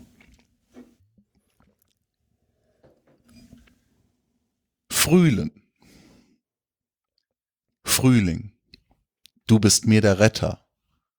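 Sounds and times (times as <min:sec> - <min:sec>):
person sipping and swallowing water: 0:00.0 - 0:03.0
speech: 0:05.0 - 0:05.6, 0:08.0 - 0:08.5, 0:09.5 - 0:10.6.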